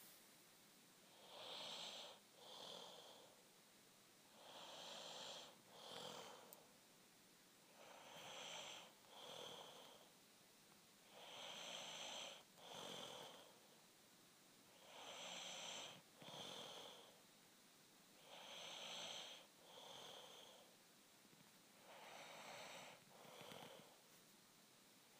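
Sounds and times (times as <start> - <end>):
snoring: 1.1 - 3.3, 4.3 - 6.5, 7.7 - 10.1, 11.1 - 13.5, 14.7 - 17.1, 18.2 - 20.7, 21.8 - 24.0.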